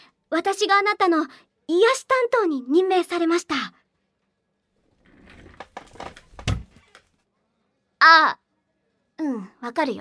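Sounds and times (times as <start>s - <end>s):
speech: 0.3s - 3.8s, 8.0s - 8.4s, 9.2s - 10.0s
chair clattering to the floor: 5.0s - 7.1s.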